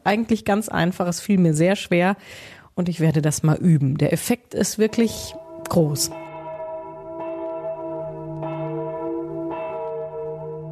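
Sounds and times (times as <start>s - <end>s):
speech: 0.1s - 6.2s
church bells ringing in a steady peal: 4.7s - 10.7s.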